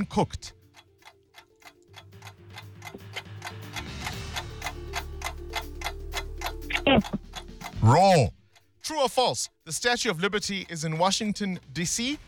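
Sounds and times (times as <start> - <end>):
speech: 0.0 - 0.6, 7.8 - 12.2
quiz countdown clock ticking: 0.0 - 12.2
low sustained musical drone: 1.5 - 8.1.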